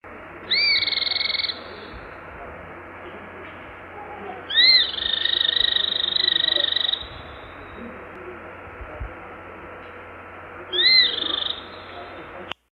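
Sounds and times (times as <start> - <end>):
steady low hum: 0.0 - 12.7
cliff flycatcher calling: 0.4 - 2.3, 3.9 - 8.1, 10.6 - 12.5.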